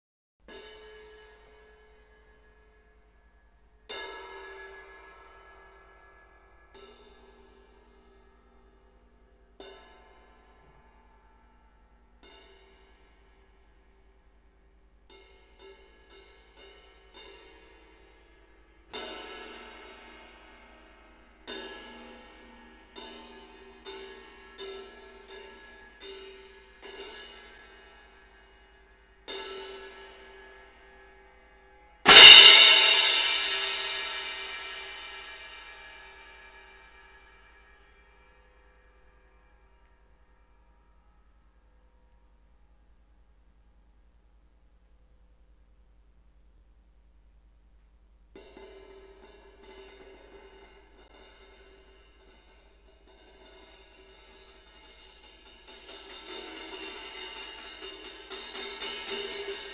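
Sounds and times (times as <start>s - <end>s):
cymbal: 0.5s - 44.4s, 48.3s - 59.7s.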